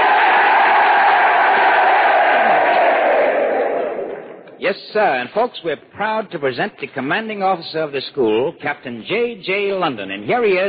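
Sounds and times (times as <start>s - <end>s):
large crowd of navy men cheering: 0.0s - 4.4s
speech: 4.7s - 10.6s.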